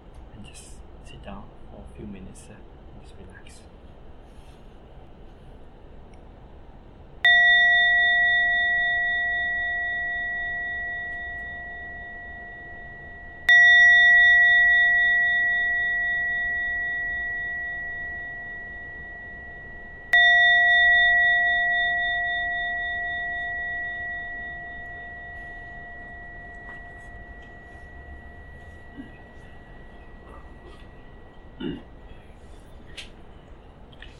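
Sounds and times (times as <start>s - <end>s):
speech: 0.6s - 3.9s
gong struck to end a meditation: 7.3s - 31.8s.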